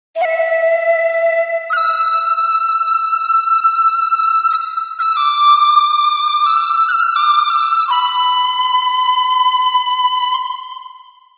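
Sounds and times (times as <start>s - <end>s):
shakuhachi flute ringtone: 0.2s - 11.3s.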